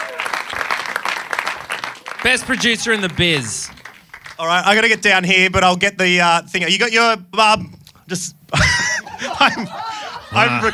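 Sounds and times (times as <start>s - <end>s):
small group clapping: 0.0s - 4.6s
speech: 2.2s - 3.8s, 4.4s - 8.4s, 9.3s - 10.7s
laughter: 8.5s - 10.7s.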